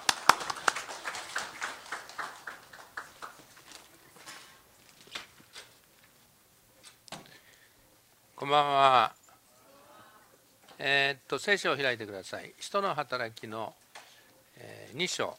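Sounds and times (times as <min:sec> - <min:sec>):
small church audience applauding to welcome a visiting pastor: 0:00.0 - 0:03.9
speech: 0:08.4 - 0:09.2, 0:10.8 - 0:13.8, 0:14.6 - 0:15.3.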